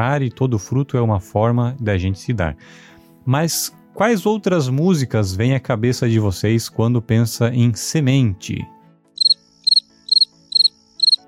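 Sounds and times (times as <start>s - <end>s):
speech: 0.0s - 8.8s
cricket chirping: 9.2s - 11.2s.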